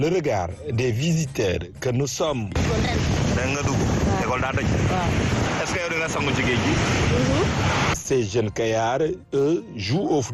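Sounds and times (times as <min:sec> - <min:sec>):
speech: 0:00.0 - 0:10.3
wind: 0:00.0 - 0:10.3
high ocean waves breaking on fine sand of a beach: 0:02.6 - 0:08.0.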